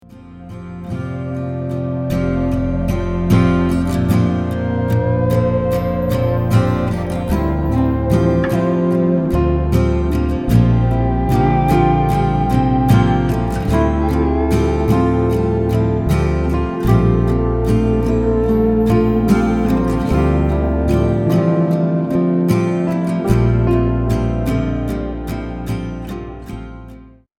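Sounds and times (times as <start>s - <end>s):
sound texture: 0.0s - 27.0s.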